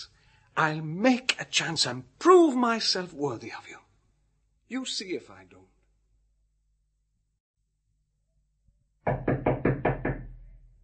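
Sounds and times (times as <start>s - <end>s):
speech: 0.0s - 3.8s, 4.7s - 5.7s
loud heavy knocking on a wooden door: 9.1s - 10.5s.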